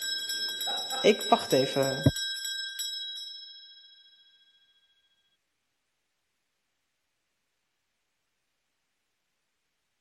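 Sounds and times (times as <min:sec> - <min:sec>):
school-type bell ringing during a council swearing-in: 0:00.0 - 0:05.0
speech: 0:01.0 - 0:02.2.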